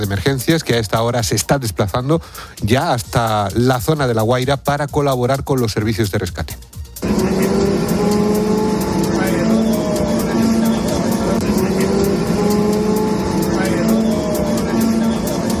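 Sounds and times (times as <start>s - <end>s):
speech: 0.0s - 7.2s
bus road rumble: 7.0s - 15.5s
moving bus engine drone: 7.0s - 15.5s.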